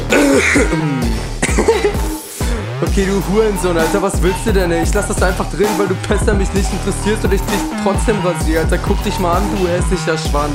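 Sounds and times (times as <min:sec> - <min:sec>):
low gravelly throat clearing: 0:00.1 - 0:02.1
sharp coughs with wheezy rasp: 0:00.1 - 0:02.1
speech: 0:00.4 - 0:02.2, 0:02.8 - 0:10.5.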